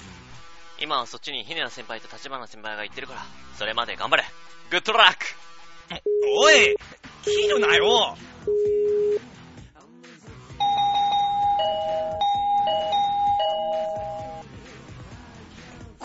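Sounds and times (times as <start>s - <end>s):
speech: 0.8s - 8.8s
electronic doorbell chime: 6.1s - 9.2s, 10.6s - 14.4s.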